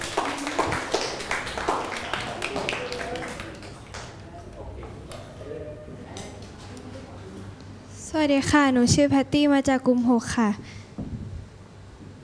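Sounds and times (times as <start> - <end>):
room full of people clapping: 0.0 - 4.3
speech: 8.2 - 10.7.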